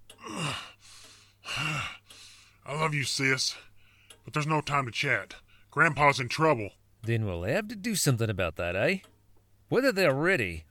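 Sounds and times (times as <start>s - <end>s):
heavy labored gasping breathing after exertion: 0.2s - 2.7s
speech: 2.8s - 9.1s, 9.7s - 10.6s.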